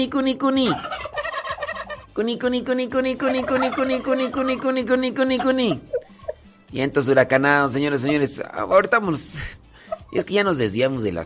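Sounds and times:
speech: 0.0 - 1.1, 2.2 - 5.9, 6.7 - 11.2
turkeys gobbling: 0.1 - 6.5, 7.1 - 9.0, 9.8 - 10.2.

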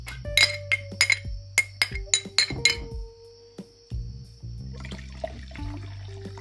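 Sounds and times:
glass clinking: 0.0 - 3.1
wine being poured into a glass: 4.8 - 6.4.

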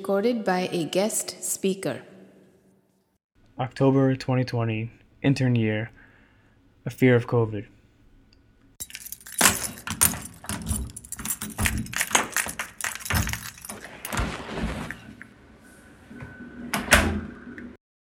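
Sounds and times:
speech: 0.0 - 2.1, 3.6 - 6.0, 6.8 - 7.7
metallic clicks and rattles: 8.8 - 14.0
keys jangling and scraping in an apartment door lock: 8.8 - 14.5
latch clunking: 8.8 - 14.5
apartment door swinging open: 9.3 - 15.0.

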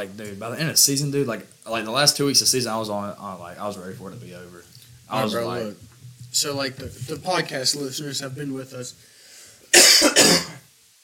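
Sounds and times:
speech: 0.0 - 9.1, 9.7 - 10.6
person coughing: 9.7 - 10.6.

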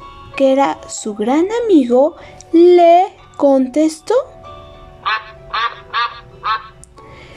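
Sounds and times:
speech: 0.4 - 4.4
duck quacking: 5.0 - 6.8.

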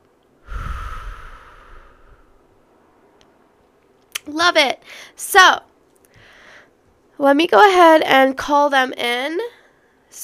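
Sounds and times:
deep breath in and out through the mouth during a guided breathing meditation: 0.4 - 2.5
speech: 4.2 - 5.7, 7.2 - 10.2.

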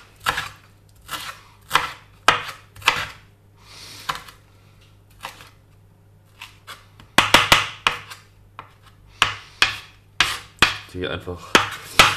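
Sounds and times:
knife coarsely chopping fresh parsley on a cutting board: 0.0 - 3.2, 4.1 - 4.4, 6.3 - 12.1
speech: 11.0 - 11.8.

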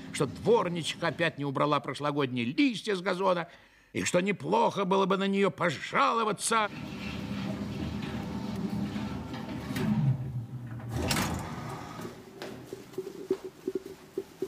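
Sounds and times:
speech: 0.2 - 7.2
elevator mechanical rumble winding down as it stops: 6.7 - 12.3.

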